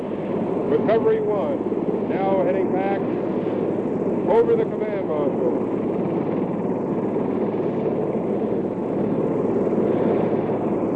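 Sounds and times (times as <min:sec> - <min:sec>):
backup recovery helicopter rotor and engine drone over a spacecraft command module: 0:00.0 - 0:10.9
speech: 0:00.7 - 0:03.3, 0:04.3 - 0:06.0.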